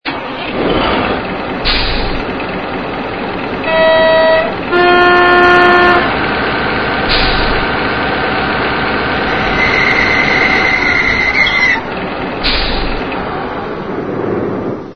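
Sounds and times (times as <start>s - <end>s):
diesel engine: 0.0s - 14.9s.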